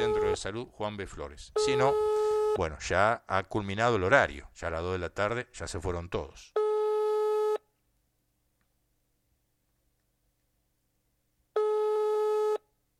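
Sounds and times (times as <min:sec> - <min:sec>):
telephone busy signal while calling a health centre: 0:00.0 - 0:00.4, 0:01.6 - 0:02.6, 0:11.6 - 0:12.6
speech: 0:00.4 - 0:06.6.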